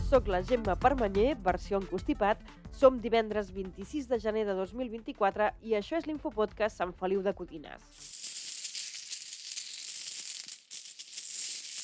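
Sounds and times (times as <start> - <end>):
speech: 0.1 - 8.2
euro coins clinking and jingling: 7.9 - 11.8.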